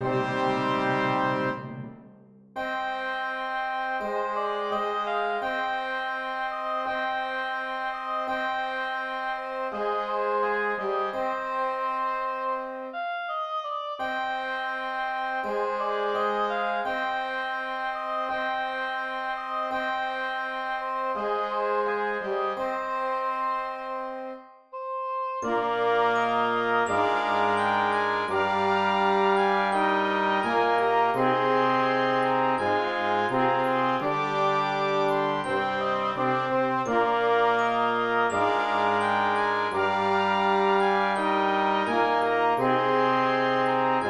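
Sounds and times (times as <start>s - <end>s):
oboe playing a ballet melody: 0.0s - 1.9s, 2.6s - 44.0s.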